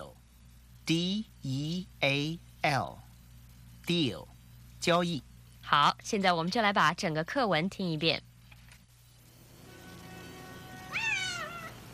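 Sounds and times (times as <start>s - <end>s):
faint steady hum: 0.0s - 11.9s
speech: 0.9s - 3.0s, 3.9s - 8.3s
cat meowing: 9.8s - 11.9s.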